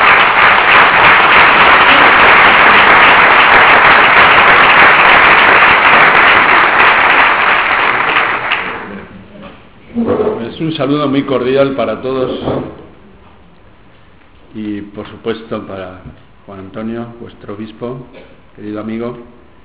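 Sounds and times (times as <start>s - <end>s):
large audience applauding: 0.0s - 9.1s
speech: 10.6s - 12.8s, 15.0s - 19.4s.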